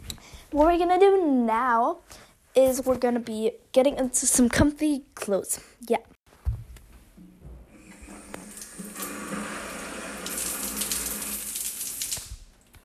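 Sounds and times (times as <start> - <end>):
speech: 0.5 - 6.1
shower water running: 7.6 - 12.8.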